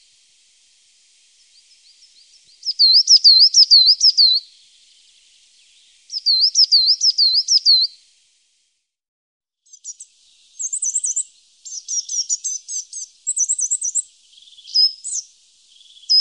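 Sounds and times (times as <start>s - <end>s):
coal tit calling: 1.4s - 8.0s, 9.7s - 16.1s.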